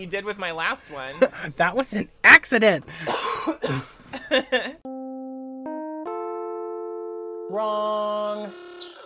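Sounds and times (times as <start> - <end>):
speech: 0.0 - 4.8, 7.5 - 8.6
harsh coughing bursts: 2.9 - 4.8.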